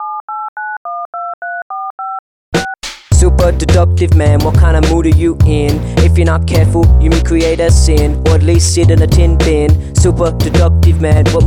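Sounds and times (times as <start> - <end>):
telephone keypad tones: 0.0 - 2.2
speech: 3.2 - 11.4.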